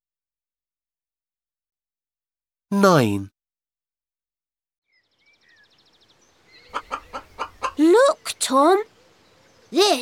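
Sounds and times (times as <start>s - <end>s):
speech: 2.7s - 3.3s, 7.8s - 8.9s, 9.7s - 10.0s
small birds twittering: 4.9s - 10.0s
chicken clucking: 6.7s - 7.9s.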